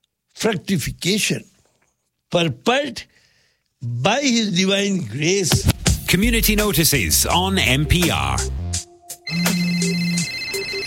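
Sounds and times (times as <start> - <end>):
speech: 0.4 - 1.5, 2.3 - 3.1, 3.8 - 9.5
phone ringtone with electronic chirps and beeps: 8.9 - 10.8.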